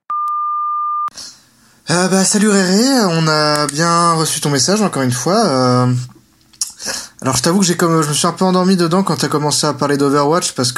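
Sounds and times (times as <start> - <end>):
answering machine beep: 0.0 - 1.1
faint hiss of room noise: 1.1 - 10.7
speech: 1.9 - 6.1, 7.2 - 10.7.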